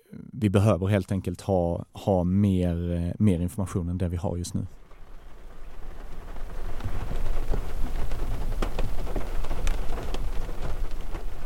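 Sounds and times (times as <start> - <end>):
speech: 0.4 - 4.8
rain pattering on a car window: 3.2 - 11.4.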